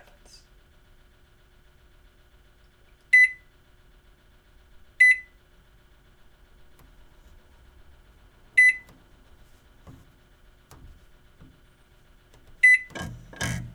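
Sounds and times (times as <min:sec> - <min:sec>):
quiet low hum: 0:05.0 - 0:13.7
handling clatter: 0:06.7 - 0:13.7
microwave oven keypad buttons beeping: 0:08.6 - 0:09.0, 0:12.6 - 0:13.7.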